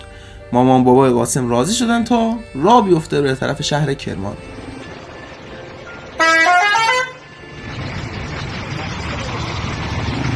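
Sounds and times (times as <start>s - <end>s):
bus engine rumbling while pulling away: 0.0s - 10.3s
speech: 0.5s - 4.6s
bus horn blaring: 4.3s - 8.2s.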